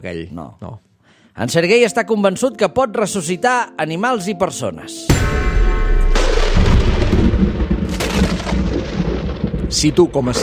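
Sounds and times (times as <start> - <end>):
speech: 0.0 - 5.5, 9.7 - 10.4
loud bang sound effect: 5.1 - 10.4
deep rolling thunderclap: 6.0 - 10.4.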